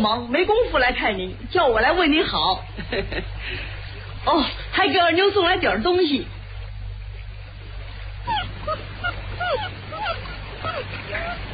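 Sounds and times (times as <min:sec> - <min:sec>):
speech: 0:00.0 - 0:06.4
low hum: 0:00.0 - 0:11.5
small puppy whimpering and yipping: 0:08.2 - 0:11.5.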